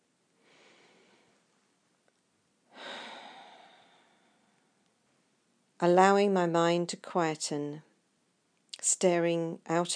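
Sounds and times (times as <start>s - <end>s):
slow deep breathing in and out: 0.4s - 1.5s, 2.7s - 4.9s
speech: 5.8s - 7.9s, 8.8s - 9.9s.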